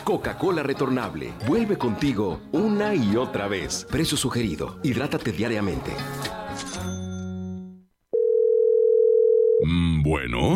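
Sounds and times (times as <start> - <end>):
speech: 0.0 - 7.0, 9.7 - 10.5
telephone tone after a hung-up call: 8.1 - 9.7.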